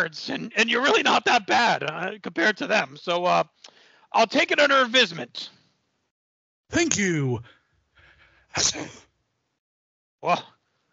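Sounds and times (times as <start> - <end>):
speech: 0.0 - 5.6, 6.7 - 7.6, 8.5 - 9.0, 10.2 - 10.5
person sneezing: 8.6 - 9.0.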